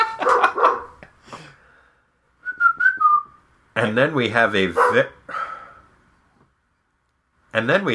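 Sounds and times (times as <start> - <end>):
dog barking sharply: 0.0 - 1.0, 4.7 - 5.2
speech: 3.8 - 5.3, 7.6 - 7.9.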